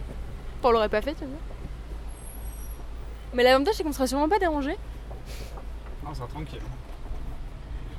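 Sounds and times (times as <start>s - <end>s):
4x4 vehicle rumbling over rough ground along a river: 0.0s - 7.9s
speech: 0.6s - 1.6s, 3.3s - 5.4s, 6.0s - 6.8s
high squeal: 2.1s - 3.3s.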